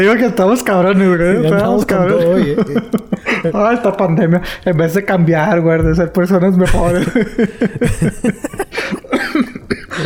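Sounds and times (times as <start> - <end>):
speech: 0.0 - 10.0
laughter: 1.0 - 4.1, 6.6 - 10.0
person coughing in rapid loud bursts: 8.4 - 10.0.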